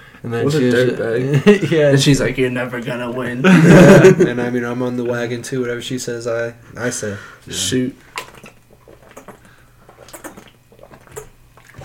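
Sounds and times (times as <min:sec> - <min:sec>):
speech: 0:00.2 - 0:08.1
laughter: 0:03.4 - 0:04.5
person drinking water from a bottle: 0:08.0 - 0:11.8.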